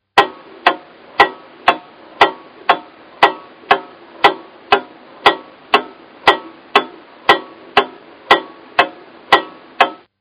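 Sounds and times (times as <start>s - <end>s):
wall clock: 0.0s - 10.1s.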